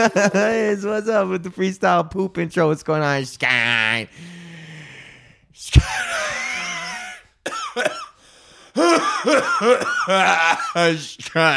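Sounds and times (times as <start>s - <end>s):
laughter: 0.0s - 0.9s, 5.8s - 7.8s, 8.8s - 11.5s
speech: 0.0s - 4.4s, 5.6s - 6.4s, 8.8s - 11.5s
breathy wheeze: 4.1s - 7.3s, 8.0s - 9.8s
person coughing roughly: 5.9s - 10.9s
sharp forced cough: 7.1s - 8.2s, 8.8s - 11.0s.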